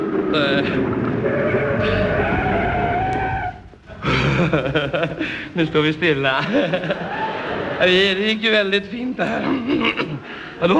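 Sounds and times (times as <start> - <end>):
speech: 0.3 - 2.0, 4.4 - 10.7
car braking hard on a town street with tires squealing: 1.2 - 3.7
laughter: 3.9 - 8.4, 9.1 - 10.2.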